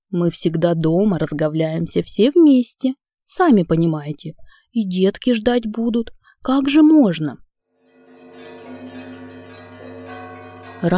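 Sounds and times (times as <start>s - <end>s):
speech: 0.1s - 7.4s
church bells ringing in the streets on a festive holiday: 7.8s - 10.9s.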